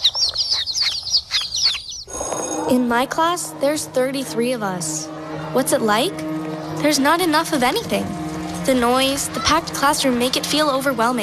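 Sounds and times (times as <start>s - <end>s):
baby chicks cheeping: 0.0s - 2.5s
speech: 2.7s - 11.2s.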